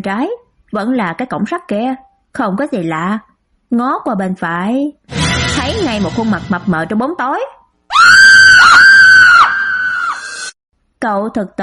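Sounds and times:
speech: 0:00.0 - 0:08.8, 0:11.0 - 0:11.6
young man screaming in fright: 0:07.9 - 0:10.5.

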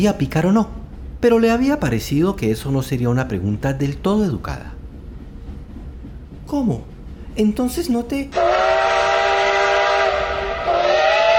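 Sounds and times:
speech: 0:00.0 - 0:04.8, 0:06.5 - 0:08.5
rumbling train noise: 0:00.0 - 0:11.3
steam locomotive whistle: 0:08.3 - 0:11.3.

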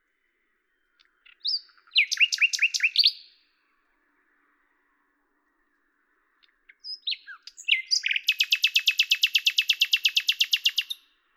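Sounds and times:
common nightingale singing: 0:00.7 - 0:03.4, 0:06.4 - 0:11.2.

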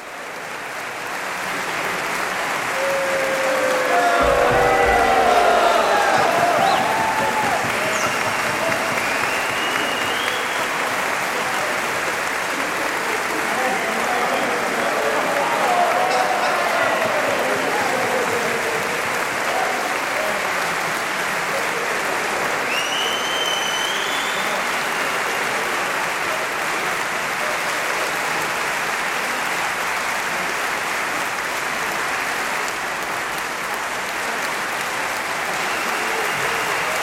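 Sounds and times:
live concert audience applauding and cheering at a festival in Tenerife: 0:00.0 - 0:37.0
concert audience whistles and shouts: 0:04.8 - 0:10.8, 0:22.7 - 0:25.3.

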